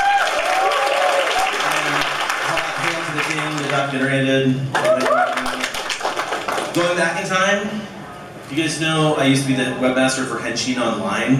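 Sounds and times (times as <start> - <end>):
audience applause: 0.0 - 4.1, 4.8 - 6.9
speech: 3.9 - 4.9, 6.8 - 7.9, 8.5 - 11.3.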